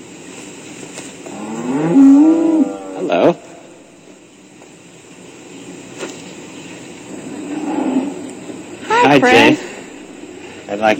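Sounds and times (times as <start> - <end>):
outdoor hiss: 0.0 - 10.9
dairy cows mooing at a dairy farm: 1.2 - 3.7, 7.2 - 10.5
speech: 9.1 - 9.6, 10.7 - 10.9.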